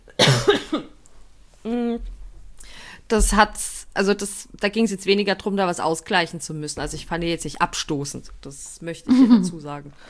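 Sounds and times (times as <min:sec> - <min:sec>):
person coughing: 0:00.2 - 0:01.0
speech: 0:03.1 - 0:10.0.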